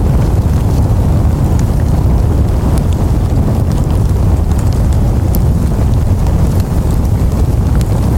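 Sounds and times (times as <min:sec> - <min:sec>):
flamethrower: 0:00.0 - 0:08.1.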